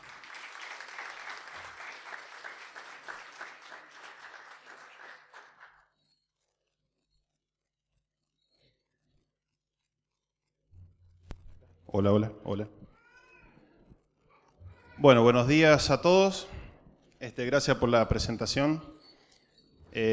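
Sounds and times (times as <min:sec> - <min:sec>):
audience applauding a speaker at a conference lecture: 0:00.0 - 0:05.9
speech: 0:12.0 - 0:12.8, 0:15.0 - 0:16.6, 0:17.2 - 0:18.9, 0:20.0 - 0:20.1.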